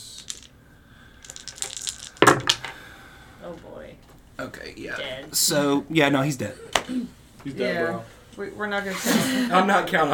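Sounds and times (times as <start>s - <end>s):
six-sided dice rolling on a table: 0.0s - 0.6s, 1.2s - 2.8s
speech: 3.5s - 10.1s.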